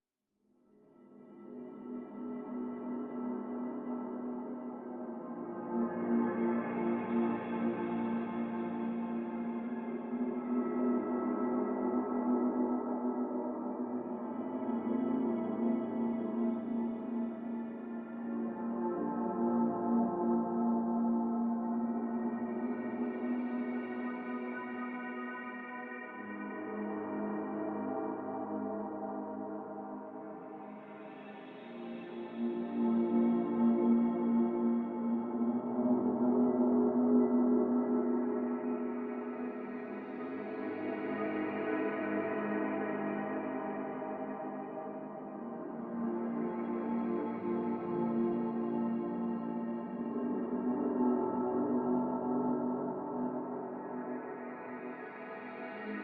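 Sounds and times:
whispering music: 0.9 - 56.0.

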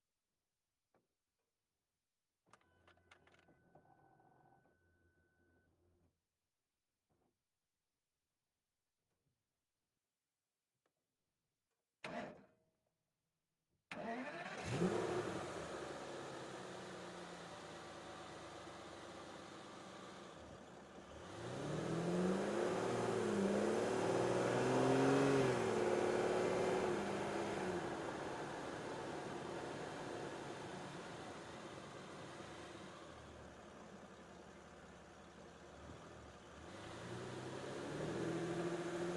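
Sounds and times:
Aston Martin DB9 engine starting: 13.9 - 39.1.

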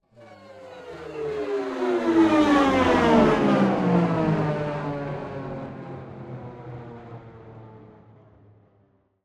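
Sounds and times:
abstract spaceship flyby descending: 0.1 - 8.2.

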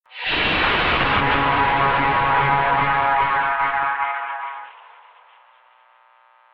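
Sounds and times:
horror stinger: 0.2 - 5.3.

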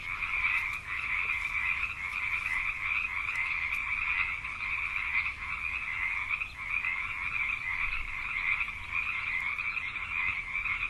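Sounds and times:
frogs: 0.0 - 10.8.

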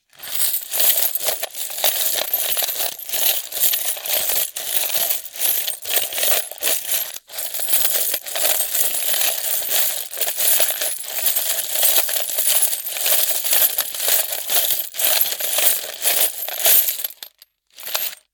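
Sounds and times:
coins in a plastic container moving around fast: 0.1 - 18.3.

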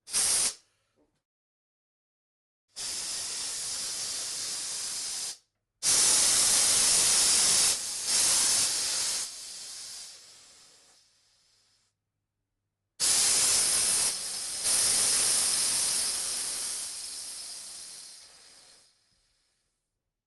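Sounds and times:
tugboat moisture drain air release: 0.0 - 0.6, 2.8 - 10.7, 13.0 - 19.5.

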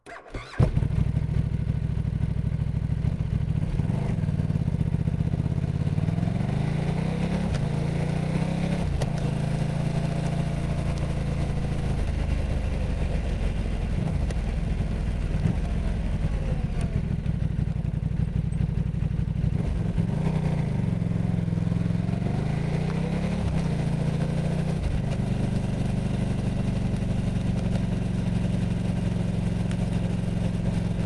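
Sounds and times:
KTM RC8R motorcycle engine starting, driving, shifting gears and shutting down: 0.0 - 31.0.

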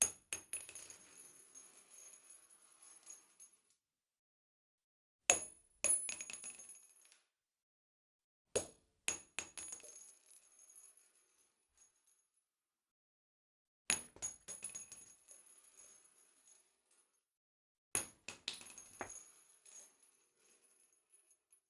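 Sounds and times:
7.62 x 39 shell casings impacting and rolling on tile floor inside: 0.0 - 3.8, 5.8 - 7.3, 9.1 - 12.2, 14.0 - 17.2, 18.0 - 21.6.

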